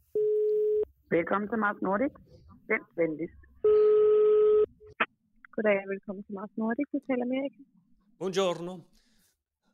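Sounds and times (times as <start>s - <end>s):
speech: 1.1s - 3.8s, 5.6s - 9.0s
telephone ringing tone: 3.6s - 4.7s.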